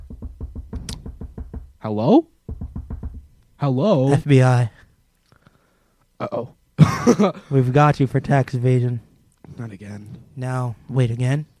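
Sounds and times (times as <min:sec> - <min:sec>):
hard knocking on a door: 0:00.0 - 0:01.8, 0:02.5 - 0:03.4
speech: 0:01.8 - 0:02.4, 0:03.6 - 0:04.8, 0:06.2 - 0:11.5.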